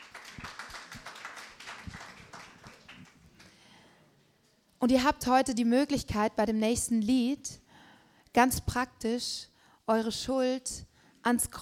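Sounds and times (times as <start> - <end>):
modest crowd clapping: 0.0 - 3.6
speech: 4.8 - 7.6, 8.4 - 11.6.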